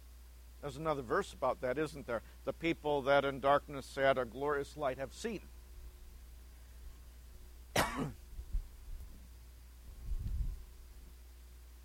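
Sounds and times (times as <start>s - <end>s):
speech: 0.6s - 5.5s
sharp cough: 7.7s - 8.2s
low guttural throat clearing: 7.8s - 8.2s.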